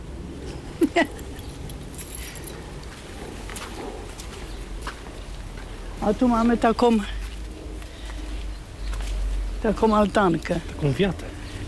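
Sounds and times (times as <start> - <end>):
steady outdoor noise: 0.0 - 11.6
speech: 1.0 - 1.2, 6.0 - 7.2, 9.6 - 11.6
keys jingling and clicking against a lock: 1.5 - 2.7.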